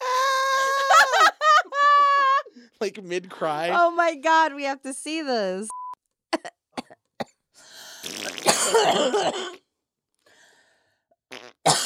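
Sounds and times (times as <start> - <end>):
laughter: 0.7 - 2.5
speech: 2.8 - 5.8, 8.7 - 9.6
person coughing with raspy breathy hacking: 8.3 - 9.6, 11.7 - 11.8.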